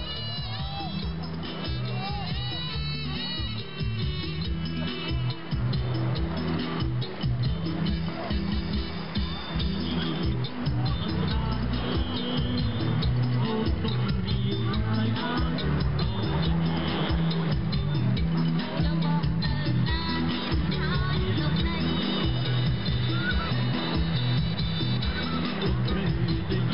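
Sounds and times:
bright singing voice line: 0.0 - 6.6, 7.2 - 26.7
murmuring talk: 0.0 - 20.7, 21.4 - 26.7
music with pulsing low beat from a seaside bar: 0.0 - 26.7
surf: 0.0 - 26.7.

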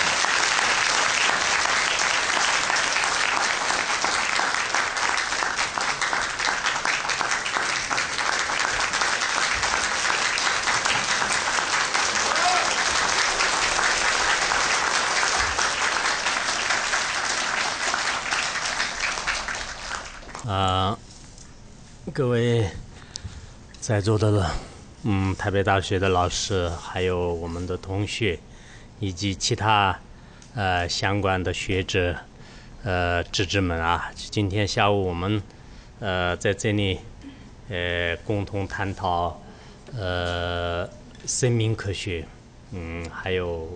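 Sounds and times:
large audience applauding: 0.0 - 20.6
speech: 22.2 - 22.8, 23.9 - 30.0, 30.6 - 37.1, 37.7 - 43.7.

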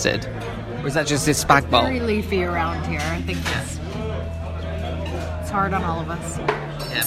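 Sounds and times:
speech: 0.0 - 4.1, 5.5 - 7.0
chatter: 0.0 - 7.0
cutlery being dropped: 3.0 - 3.8.

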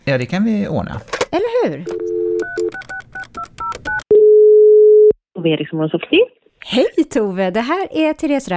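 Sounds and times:
speech: 0.1 - 2.9, 5.4 - 8.5
long steady telephone ringing tone: 1.9 - 2.8, 4.0 - 5.2
telephone dial tone: 1.9 - 5.1.

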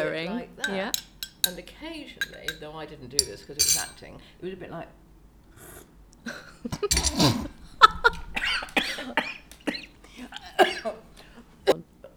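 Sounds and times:
speech: 0.1 - 5.0, 5.6 - 8.2
laughter: 6.2 - 12.1
person choking and coughing: 6.7 - 11.0.

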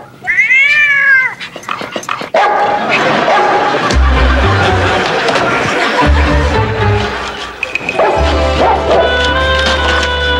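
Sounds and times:
cat meowing: 0.2 - 1.4
laughter: 1.9 - 10.2.

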